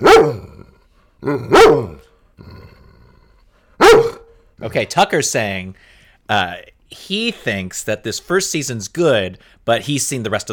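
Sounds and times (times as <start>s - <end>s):
dog barking: 0.0s - 0.5s, 1.5s - 2.0s, 3.8s - 4.3s
speech: 1.2s - 2.6s, 4.6s - 10.5s.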